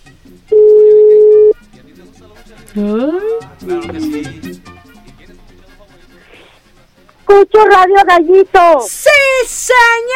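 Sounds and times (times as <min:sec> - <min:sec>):
telephone line connecting beep for a radio call-in: 0:00.5 - 0:01.6
speech: 0:02.8 - 0:03.2, 0:07.5 - 0:10.1.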